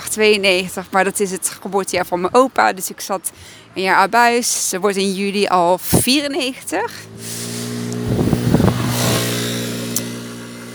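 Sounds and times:
speech: 0.2 - 7.4
small motor scooter buzzing past: 6.9 - 10.7.

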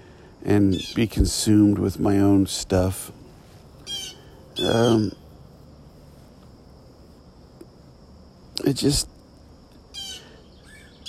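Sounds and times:
speech: 0.4 - 3.2, 4.6 - 5.2, 8.7 - 9.1
bird giving a short high reedy cry outdoors in the morning: 3.8 - 5.3, 9.9 - 11.0.

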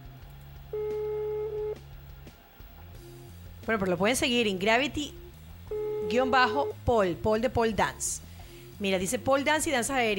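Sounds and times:
low hum: 0.0 - 10.1
electronic ringback tone of an outgoing phone call: 0.8 - 1.8, 5.7 - 6.8
speech: 3.7 - 5.2, 6.1 - 8.2, 8.8 - 10.1.

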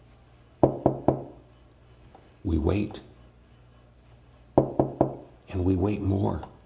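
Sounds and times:
knocking on a door: 0.6 - 1.4, 4.6 - 5.2
speech: 2.4 - 3.1, 5.5 - 6.5.

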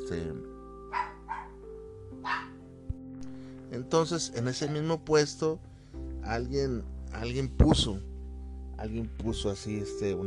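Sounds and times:
speech: 0.1 - 1.0, 3.7 - 8.1, 8.8 - 10.2
dog barking: 0.9 - 1.6, 2.2 - 2.6.

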